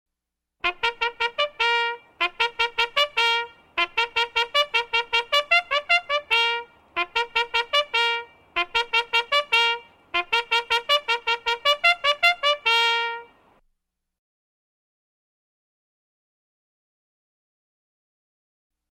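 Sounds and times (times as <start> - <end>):
bugle call outdoors at a parade dismissal: 0.6 - 13.4.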